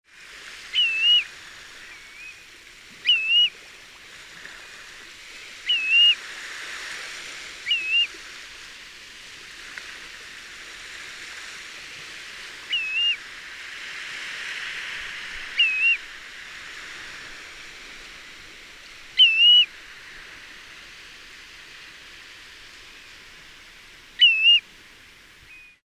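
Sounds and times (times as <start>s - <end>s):
ringed plover: 0.7s - 1.2s, 3.0s - 3.5s, 5.6s - 6.2s, 7.6s - 8.1s, 12.7s - 13.2s, 15.6s - 16.0s, 19.2s - 19.7s, 24.2s - 24.6s, 25.5s - 25.8s.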